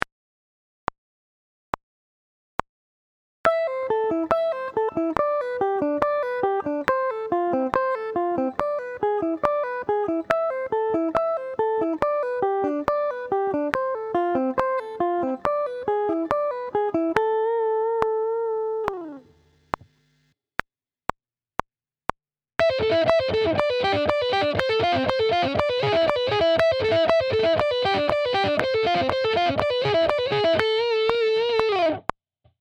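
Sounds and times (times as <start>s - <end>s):
guitar sweep picking: 3.5s - 19.4s, 22.6s - 32.1s.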